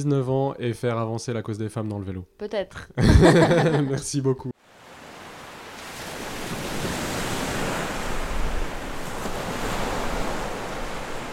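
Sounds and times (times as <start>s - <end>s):
speech: 0.0s - 4.5s
laughter: 2.8s - 4.2s
sea waves washing onto the shore: 4.6s - 11.3s.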